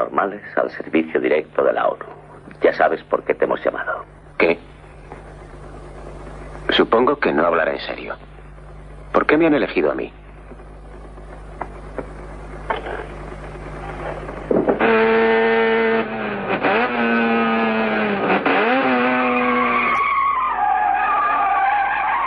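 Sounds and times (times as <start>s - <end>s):
quiet rumbling: 0.0s - 15.2s
speech: 0.2s - 4.7s, 6.8s - 8.3s, 9.1s - 10.2s
car weighing nearly one ton skidding backward on locked wheels: 14.8s - 22.2s.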